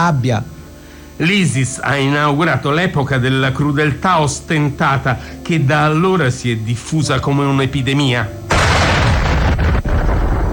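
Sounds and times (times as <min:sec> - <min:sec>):
speech: 0:00.0 - 0:00.6, 0:01.2 - 0:08.4
Russian bombs exploding on a theatre in Mariupol filled with families: 0:08.5 - 0:10.5.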